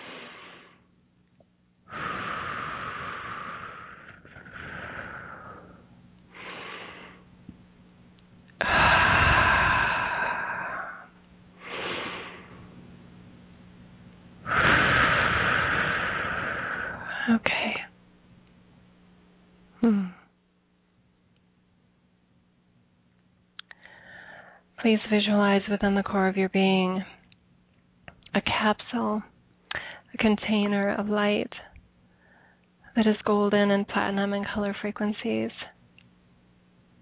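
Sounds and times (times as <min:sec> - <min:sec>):
slow deep breaths in through nose and out through mouth during guided relaxation: 0:00.0 - 0:00.9, 0:01.9 - 0:07.3, 0:08.6 - 0:12.7, 0:14.4 - 0:17.4, 0:23.7 - 0:24.7, 0:32.1 - 0:32.7
speech: 0:24.9 - 0:27.1, 0:28.6 - 0:29.3, 0:30.2 - 0:31.7, 0:33.0 - 0:35.6.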